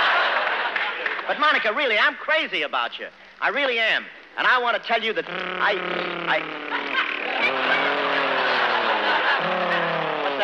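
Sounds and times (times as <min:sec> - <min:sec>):
laughter: 0:00.0 - 0:01.7, 0:05.6 - 0:10.4
speech: 0:01.3 - 0:07.1
human voice imitating a revving motorcycle engine: 0:05.2 - 0:10.4.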